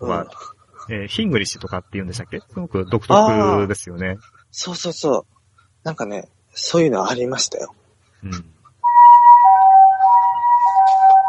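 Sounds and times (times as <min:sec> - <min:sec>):
speech: 0:00.0 - 0:08.5
two-tone ambulance siren wailing: 0:08.8 - 0:11.2.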